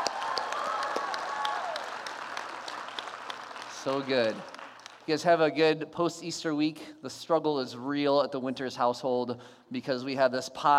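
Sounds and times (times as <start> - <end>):
audience applause: 0.0 - 5.1
speech: 3.8 - 10.7.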